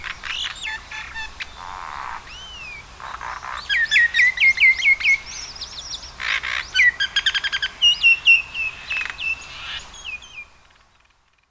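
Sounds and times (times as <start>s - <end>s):
common myna calling on Yonaguni: 0.0s - 11.4s.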